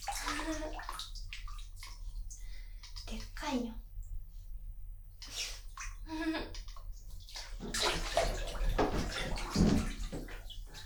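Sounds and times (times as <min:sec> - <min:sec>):
shower water splashing and trickling: 0:00.0 - 0:03.4, 0:06.6 - 0:10.8
speech: 0:00.5 - 0:01.0, 0:03.1 - 0:03.8.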